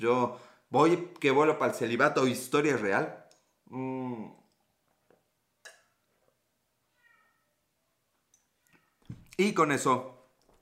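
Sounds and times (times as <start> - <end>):
speech: 0.0 - 4.4, 9.4 - 10.6
cat giving a short soft meow: 6.9 - 7.6.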